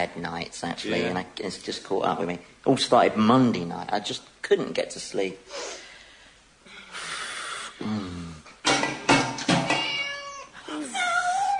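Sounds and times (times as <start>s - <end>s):
speech: 0.0s - 5.8s, 7.8s - 8.2s
cats caterwauling while mating: 9.7s - 11.5s.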